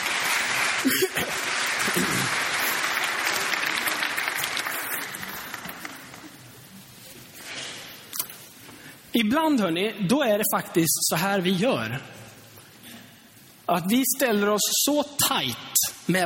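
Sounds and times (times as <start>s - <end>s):
audience applause: 0.0s - 6.5s
speech: 0.8s - 2.4s, 9.2s - 12.2s, 13.7s - 16.2s.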